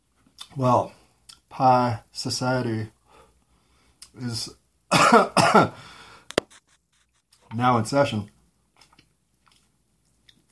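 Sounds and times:
speech: 0.6 - 1.0, 1.6 - 3.0, 4.2 - 6.0, 7.5 - 8.3
person coughing: 4.9 - 5.8.

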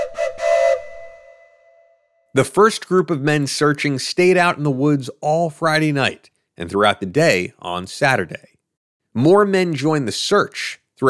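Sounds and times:
steam locomotive whistle with hissing steam: 0.0 - 2.1
speech: 2.3 - 8.5, 9.2 - 11.0.

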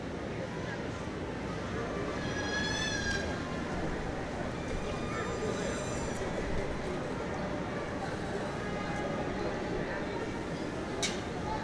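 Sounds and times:
crowd chatter in a busy city park in springtime: 0.0 - 11.6.

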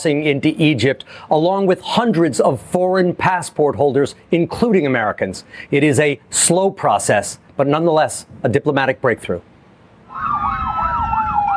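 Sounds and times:
speech: 0.0 - 9.5
low rumble of traffic: 0.0 - 11.5
ambulance siren wailing: 10.1 - 11.5.

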